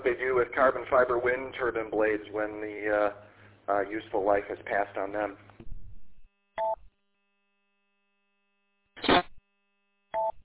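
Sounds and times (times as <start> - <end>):
faint steady hum: 0.0 - 10.4
speech: 0.6 - 5.5
telephone keypad tones: 6.6 - 6.8, 10.2 - 10.4.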